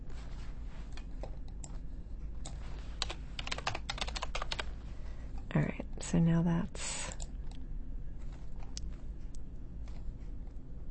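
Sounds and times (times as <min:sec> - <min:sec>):
low hum: 0:00.0 - 0:10.8
computer keyboard typing: 0:02.4 - 0:04.7
speech: 0:05.5 - 0:06.8.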